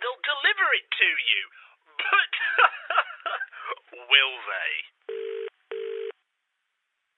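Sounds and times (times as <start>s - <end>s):
speech: 0.7s - 2.3s
laughter: 2.0s - 3.9s
telephone line ringing through a handset earpiece: 5.1s - 6.1s.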